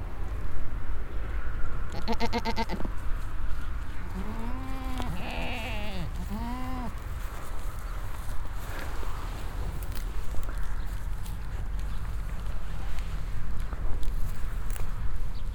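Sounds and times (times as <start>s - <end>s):
passing traffic on a road: 0.0s - 15.5s
group of goats bleating in a corral on a meadow: 1.9s - 2.9s, 4.0s - 7.0s.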